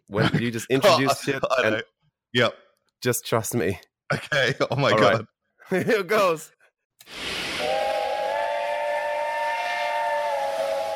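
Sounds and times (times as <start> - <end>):
speech: 0.1 - 7.4
hiss of escaping steam: 7.0 - 9.9
steam train whistle blowing: 7.4 - 10.9.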